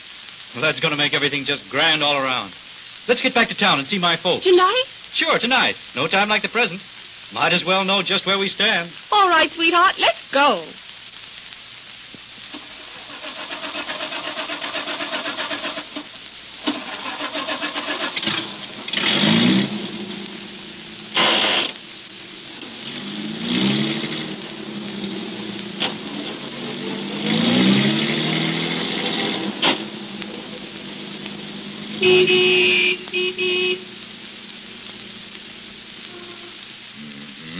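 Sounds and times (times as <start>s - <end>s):
speech: 0.5s - 10.8s
car engine starting: 12.5s - 36.9s.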